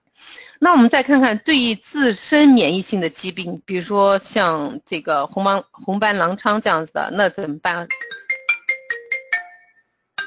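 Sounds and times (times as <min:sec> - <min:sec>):
speech: 0:00.6 - 0:08.0
phone ringtone signalling an incoming call: 0:07.9 - 0:10.2.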